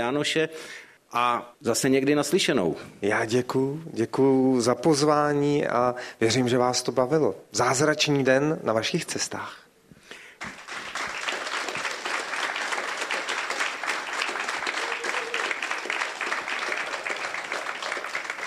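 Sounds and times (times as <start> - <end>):
speech: 0.0 - 9.6
large audience applauding: 10.4 - 18.4.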